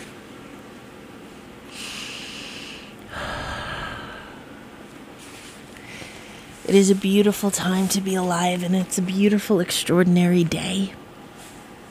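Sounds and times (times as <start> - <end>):
slow deep breathing: 1.7 - 4.8, 5.8 - 6.6
speech: 6.7 - 11.0.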